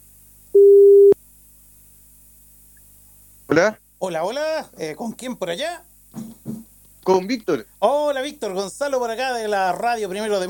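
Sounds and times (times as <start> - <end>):
telephone call tone while a call is being placed: 0.6 - 1.2
speech: 3.5 - 5.9, 7.0 - 10.4.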